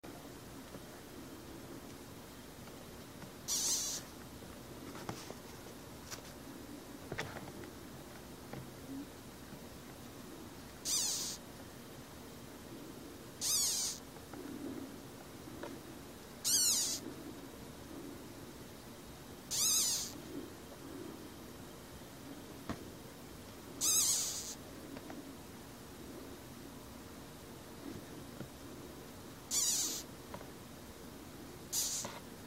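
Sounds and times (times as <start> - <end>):
butterfly larvae: 0.1 - 32.4.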